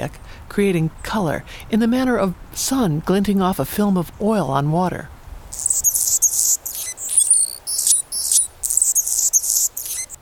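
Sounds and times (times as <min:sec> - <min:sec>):
speech: 0:00.0 - 0:05.7
male Anna's hummingbird buzzy high chirps while diving in display: 0:05.5 - 0:10.2.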